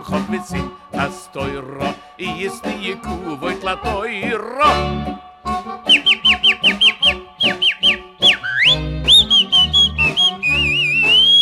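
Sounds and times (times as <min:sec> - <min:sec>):
speech: 0:00.0 - 0:06.1
person whistling: 0:05.9 - 0:11.4.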